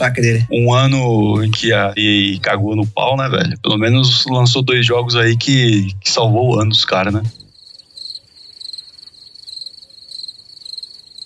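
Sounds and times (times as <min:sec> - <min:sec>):
speech: 0:00.0 - 0:07.4
crickets chirping in a high continuous trill: 0:04.9 - 0:11.2.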